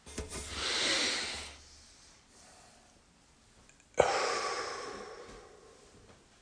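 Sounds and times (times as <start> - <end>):
slow deep breath in and out: 0.5 - 3.0, 4.0 - 6.2.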